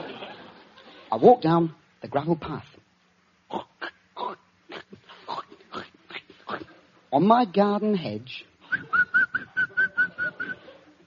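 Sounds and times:
speech: 1.1s - 2.7s, 7.1s - 8.5s
man whistling a short tune: 8.7s - 10.6s.

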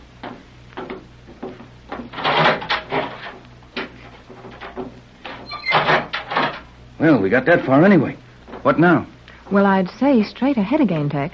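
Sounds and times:
low steady hum: 0.0s - 11.3s
heavy steel door wrenched open with clanks and scrapes: 2.0s - 6.7s
speech: 7.0s - 11.3s.

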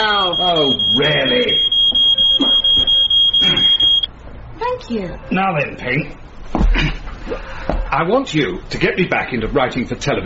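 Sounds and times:
smoke alarm set off by pipe smoke beeping: 0.0s - 4.1s
speech: 4.9s - 6.2s, 6.8s - 10.2s.

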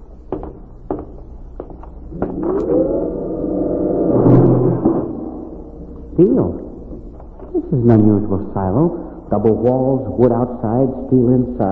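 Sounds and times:
knocks or footsteps in the pitch dark: 0.1s - 2.8s
heavy door creaking open slowly: 2.1s - 7.2s
speech: 6.2s - 6.6s, 7.7s - 11.7s.

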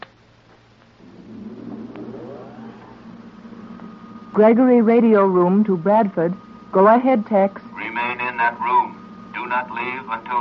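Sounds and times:
car engine humming and revving up: 1.0s - 6.2s
speech: 4.4s - 7.6s, 8.4s - 10.3s.

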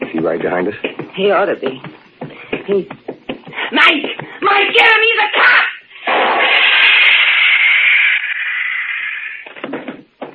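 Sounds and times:
speech: 0.2s - 2.0s, 2.7s - 3.0s, 3.7s - 5.6s
stun gun blast electric buzz and hiss: 4.4s - 9.6s.

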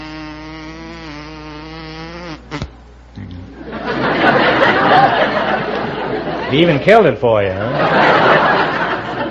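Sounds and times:
person mimicking a bumblebee with a low droning vocal buzz: 0.0s - 3.6s
crowd laughing: 3.6s - 6.9s, 7.5s - 9.2s
speech: 6.5s - 8.0s.

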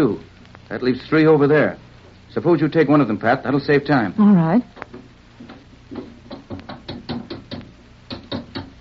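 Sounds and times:
speech: 0.0s - 5.6s
stuck door being pushed and yanked, knocking and rattling: 5.4s - 8.8s.

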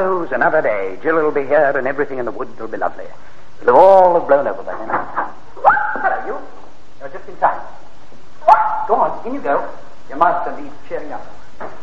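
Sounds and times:
speech: 0.0s - 7.8s, 8.4s - 11.8s
dog barking: 8.4s - 8.9s.

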